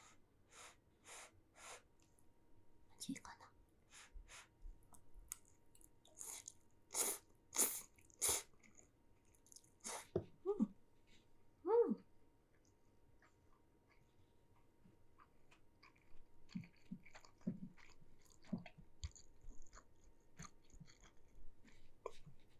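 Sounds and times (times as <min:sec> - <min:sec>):
speech: 0:03.1 - 0:03.5
person chewing pasta made with buckwheat flour: 0:04.8 - 0:10.1, 0:12.5 - 0:22.5.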